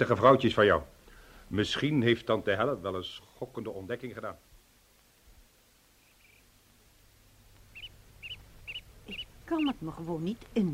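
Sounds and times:
speech: 0.0 - 4.5, 9.5 - 10.7
soft constant hiss: 0.0 - 10.7
bird chirping outdoors on a terrace: 5.9 - 6.6, 7.5 - 10.6
fainter bird calls: 5.9 - 10.5.

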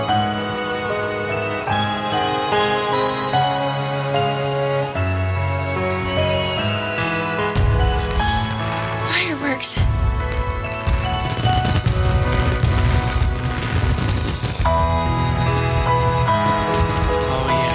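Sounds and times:
music: 0.0 - 17.7
fireworks booming and crackling: 5.9 - 17.7
voices: 17.1 - 17.7.

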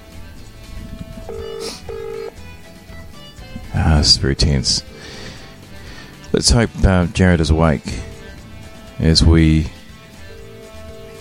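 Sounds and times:
telephone ringback tone: 1.0 - 2.4, 4.0 - 4.9, 7.9 - 9.0, 9.7 - 11.1
speech: 3.8 - 5.1, 6.4 - 8.1, 9.0 - 9.8.

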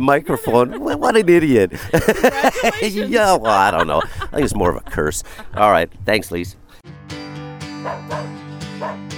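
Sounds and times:
laughter: 0.0 - 6.5
speech: 0.0 - 6.6
dog barking playfully in yips and woofs: 7.8 - 9.1.

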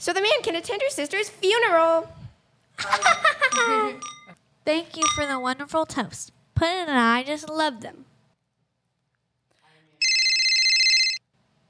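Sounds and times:
speech: 0.0 - 2.2, 2.8 - 4.1, 4.7 - 8.1
telephone ringing with an electronic trill: 10.0 - 11.2.

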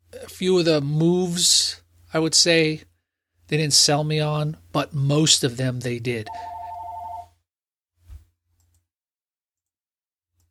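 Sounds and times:
speech: 0.1 - 2.9, 3.5 - 6.6
telephone ringing with warbling electronic tone: 6.3 - 7.4.

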